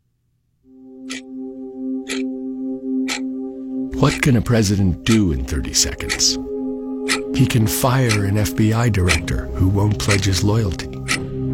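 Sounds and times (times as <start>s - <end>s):
low sustained ominous synthesizer drone: 0.7s - 11.5s
clock ticking in political ad: 1.1s - 1.3s, 2.0s - 2.3s, 3.0s - 3.3s, 4.0s - 6.4s, 7.0s - 11.4s
speech: 4.0s - 6.6s, 7.4s - 11.2s.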